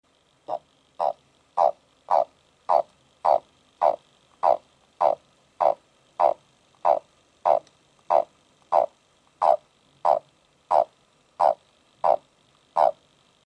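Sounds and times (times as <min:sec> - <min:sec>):
Bufo eichwaldi calling: 0:00.4 - 0:13.0.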